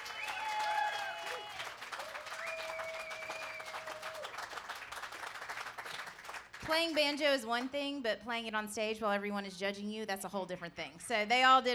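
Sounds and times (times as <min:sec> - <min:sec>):
high whistles from audience: 0:00.0 - 0:04.1
audience cheers: 0:00.0 - 0:06.5
audience applause: 0:00.0 - 0:06.7
speech: 0:06.6 - 0:11.7.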